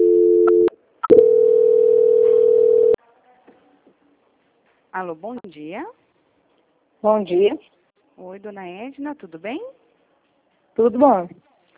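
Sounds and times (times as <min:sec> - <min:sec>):
telephone line tone during a call-center call transfer: 0:00.0 - 0:03.0
speech: 0:05.0 - 0:06.0, 0:07.0 - 0:09.8, 0:10.8 - 0:11.4.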